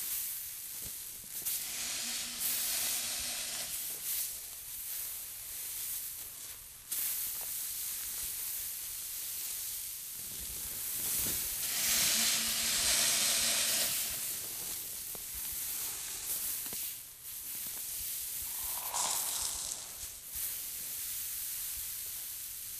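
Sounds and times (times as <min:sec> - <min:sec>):
rice falling backwards: 0:01.4 - 0:05.0, 0:11.0 - 0:14.8, 0:18.4 - 0:20.5.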